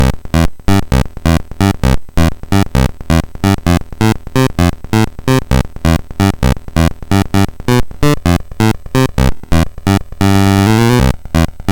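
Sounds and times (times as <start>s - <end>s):
MOS6581R3 bass: 0.0s - 11.6s.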